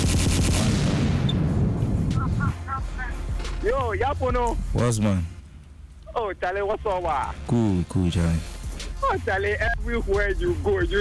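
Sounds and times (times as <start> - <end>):
gunshot sound effect with sharp cracks: 0.0 - 1.6
heavy booming rumble of gunshot: 0.0 - 2.5
speech: 3.6 - 5.4, 6.2 - 10.9.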